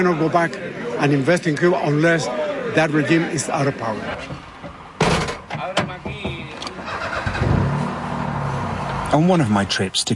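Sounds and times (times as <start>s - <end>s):
speech: 0.0s - 4.5s, 9.1s - 10.1s
car engine starting and running in Havana Cuba: 6.1s - 10.0s.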